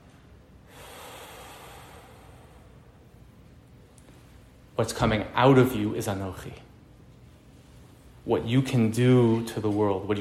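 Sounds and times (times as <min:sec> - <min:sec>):
person exhaling a held breath during a guided breathing exercise: 0:00.6 - 0:02.9
speech: 0:04.8 - 0:06.7, 0:08.2 - 0:10.1.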